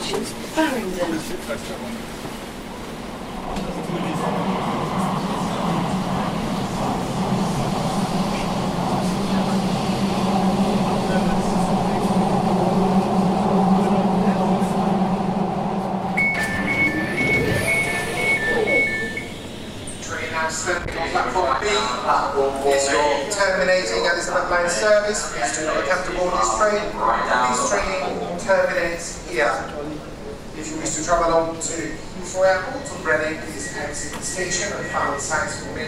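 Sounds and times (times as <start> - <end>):
underground passenger train rumbling between stations: 0.0 - 35.8
speech: 0.2 - 2.3, 24.5 - 29.7, 30.9 - 35.8
short series of high electronic beeps: 16.2 - 19.4.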